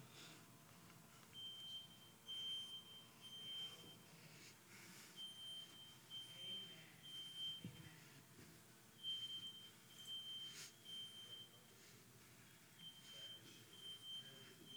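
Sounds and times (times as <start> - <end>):
smoke alarm beeping: 1.3 - 4.1, 5.1 - 7.8, 9.0 - 11.7, 12.8 - 14.7.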